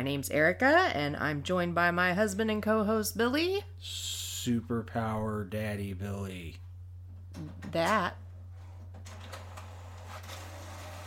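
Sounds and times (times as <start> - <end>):
speech: 0.0 - 6.6, 7.4 - 8.2
printer humming: 9.1 - 11.0.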